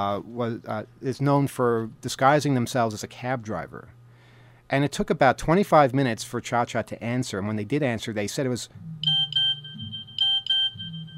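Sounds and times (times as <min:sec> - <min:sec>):
speech: 0:00.0 - 0:04.0, 0:04.7 - 0:09.1
small electronic beep signalling an answer: 0:09.0 - 0:11.1.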